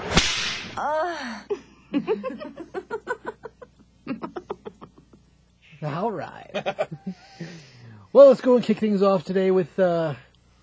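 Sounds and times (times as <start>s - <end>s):
whip crack: 0.0s - 0.8s
speech: 0.8s - 2.8s, 5.8s - 10.3s
person laughing rhythmically: 1.2s - 5.2s, 6.6s - 7.6s.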